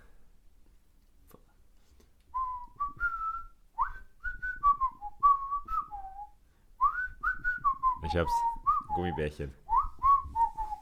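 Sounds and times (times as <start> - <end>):
person whistling a cartoon theme tune: 2.3 - 10.8
speech: 8.1 - 9.6.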